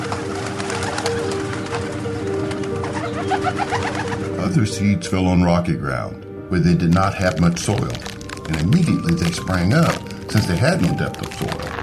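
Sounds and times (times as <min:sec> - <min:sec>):
birds cooing: 0:00.0 - 0:04.6
speech: 0:03.5 - 0:11.8.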